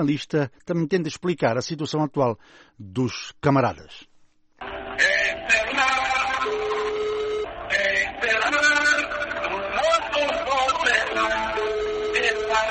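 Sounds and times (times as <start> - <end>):
speech: 0.0 - 4.1
tinny band-limited song as mobile phone ringback tone: 4.6 - 12.7.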